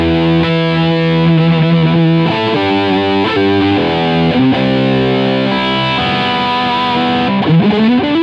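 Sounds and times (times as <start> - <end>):
lead synth sound: 0.1 - 8.0.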